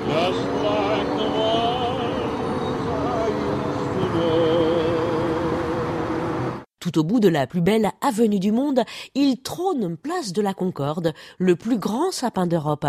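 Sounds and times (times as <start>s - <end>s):
engines droning: 0.0s - 6.6s
city street traffic rumbling and accelerating at green light: 0.0s - 6.7s
speech: 6.8s - 12.8s.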